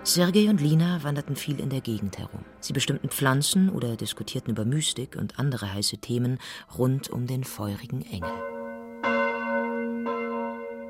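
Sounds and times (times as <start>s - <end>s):
speech: 0.0s - 8.5s
large church bell ringing: 8.2s - 10.8s.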